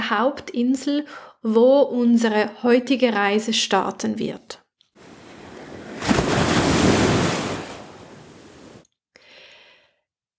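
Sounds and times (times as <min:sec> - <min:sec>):
speech: 0:00.1 - 0:04.6
ocean waves breaking on shore: 0:05.0 - 0:08.8.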